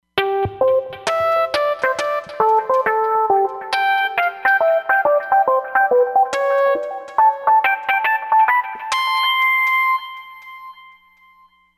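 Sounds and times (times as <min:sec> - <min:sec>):
Roland Fantom XR synthesizer patch: 0:00.2 - 0:10.5.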